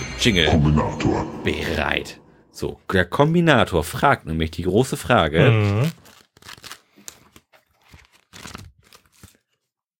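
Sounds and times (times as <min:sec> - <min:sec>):
speech: 0:00.2 - 0:06.6
pages of two paper notepads flipping: 0:05.6 - 0:09.8.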